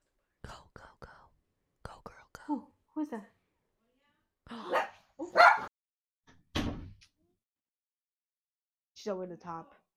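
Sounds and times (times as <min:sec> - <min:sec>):
speech: 0:02.5 - 0:03.4, 0:09.0 - 0:09.8
dog barking: 0:04.6 - 0:05.7.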